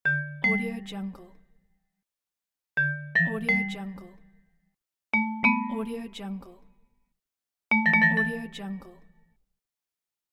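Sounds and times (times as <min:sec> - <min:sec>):
vibraphone: 0:00.1 - 0:00.8, 0:02.8 - 0:03.9, 0:05.2 - 0:06.0, 0:07.7 - 0:08.6.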